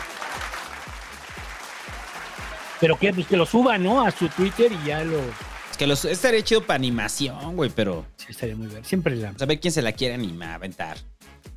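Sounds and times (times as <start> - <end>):
crowd applause with dense clapping: 0.0 - 7.3
speech: 2.8 - 11.1.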